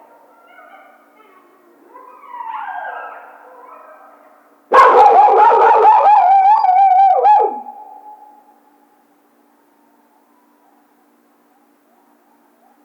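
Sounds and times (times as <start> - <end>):
coyote howling: 1.9 - 8.4.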